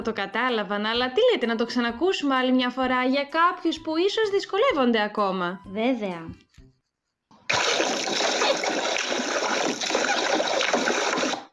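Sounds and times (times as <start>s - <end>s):
speech: 0.0s - 6.5s
water rushing: 7.5s - 11.5s.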